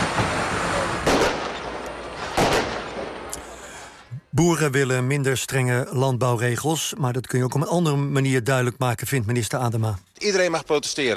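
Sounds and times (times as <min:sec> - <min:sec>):
fireworks set off by protesting farmers at a demonstration in Brussels: 0:00.0 - 0:03.9
speech: 0:04.4 - 0:11.1.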